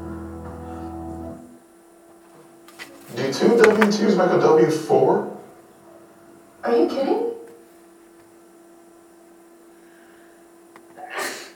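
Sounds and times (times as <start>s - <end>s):
speech: 3.3s - 5.3s
person sneezing: 11.0s - 11.5s.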